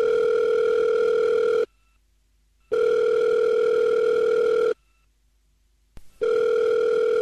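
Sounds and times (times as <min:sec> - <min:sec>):
telephone ringing tone before an intercepted phone call: 0:00.0 - 0:01.7, 0:02.7 - 0:04.8, 0:06.2 - 0:07.2.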